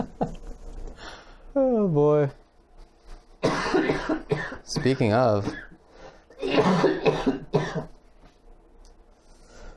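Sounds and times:
speech: 0:01.6 - 0:02.4, 0:04.1 - 0:05.6, 0:06.4 - 0:07.5
harsh chesty coughs: 0:03.4 - 0:08.0.

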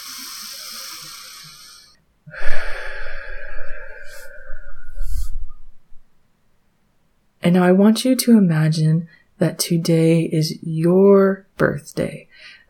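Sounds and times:
deep breath drawn in through the nose and released through the mouth: 0:00.0 - 0:06.1, 0:12.3 - 0:12.6
speech: 0:07.4 - 0:12.6.

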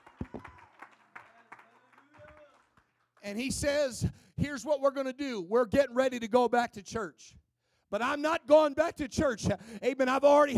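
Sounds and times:
church audience clapping hands in praise: 0:00.0 - 0:03.6
speech: 0:03.2 - 0:10.5.

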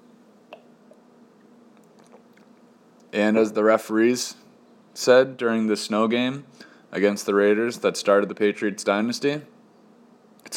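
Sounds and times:
faint steady hum: 0:00.0 - 0:10.5
sipping and swallowing Guinness stout beer: 0:01.8 - 0:02.6
speech: 0:03.1 - 0:04.4, 0:05.0 - 0:09.5.

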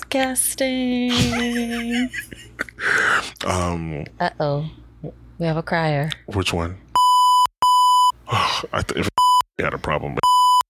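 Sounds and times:
speech: 0:00.1 - 0:06.8, 0:08.6 - 0:10.3
censor bleeps over a spoken name: 0:07.0 - 0:08.2, 0:10.2 - 0:10.6.

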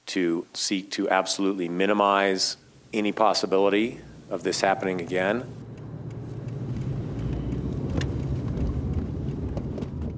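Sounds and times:
speech: 0:00.2 - 0:05.7
car driving, road and engine noise: 0:02.6 - 0:10.1.

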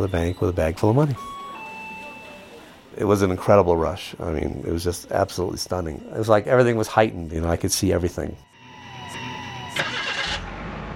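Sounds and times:
speech: 0:00.0 - 0:01.4, 0:03.0 - 0:08.5
car engine starting: 0:09.2 - 0:10.9.

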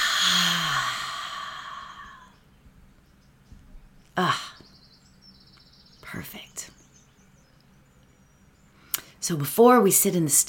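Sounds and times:
person exhaling a deep breath during a guided breathing exercise: 0:00.0 - 0:02.3
speech: 0:09.3 - 0:10.4.

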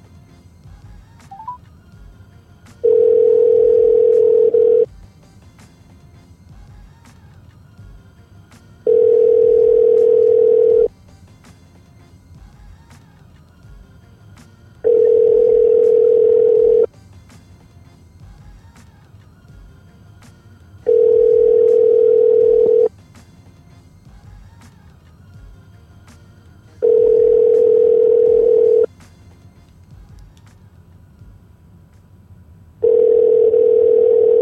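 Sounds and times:
telephone ringing tone while placing a call: 0:01.3 - 0:01.6, 0:02.8 - 0:04.9, 0:08.9 - 0:10.9, 0:14.9 - 0:16.9, 0:20.9 - 0:22.9, 0:26.8 - 0:28.9, 0:32.8 - 0:34.4.

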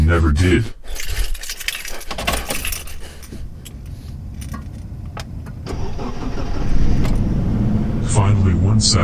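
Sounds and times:
speech: 0:00.1 - 0:01.1, 0:08.8 - 0:09.0
car keys jangling: 0:00.8 - 0:05.6
car engine turning over and rumbling: 0:01.6 - 0:09.0.

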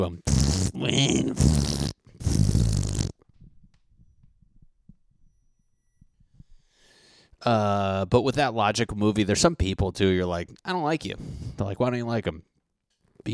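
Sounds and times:
speech: 0:00.0 - 0:02.0, 0:07.4 - 0:12.5
raspy fart noises: 0:00.0 - 0:03.4.

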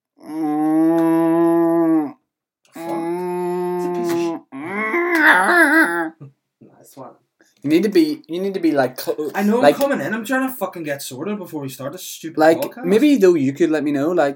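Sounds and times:
person imitating cow mooing: 0:00.2 - 0:02.2, 0:02.8 - 0:06.2
speech: 0:06.8 - 0:14.3.

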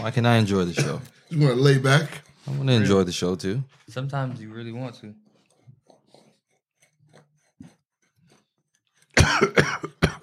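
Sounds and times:
speech: 0:00.0 - 0:05.2, 0:09.2 - 0:10.0
loud harsh coughs: 0:00.6 - 0:01.2, 0:09.1 - 0:10.2.

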